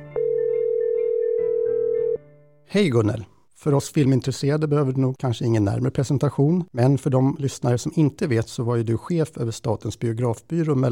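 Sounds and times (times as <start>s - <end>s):
steady telephone dialing tone while calling a guest: 0.0s - 2.3s
speech: 2.7s - 10.8s.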